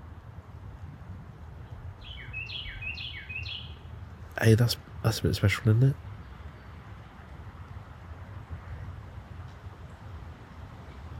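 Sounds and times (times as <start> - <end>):
bird chirping: 1.6 - 4.0
speech: 4.4 - 6.1.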